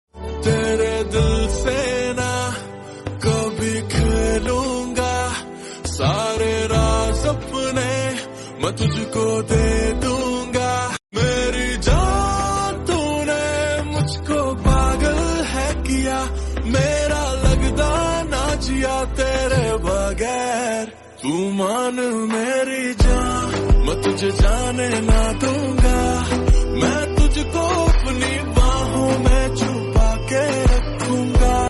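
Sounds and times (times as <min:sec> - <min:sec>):
lofi Hindi song: 0:00.2 - 0:31.6.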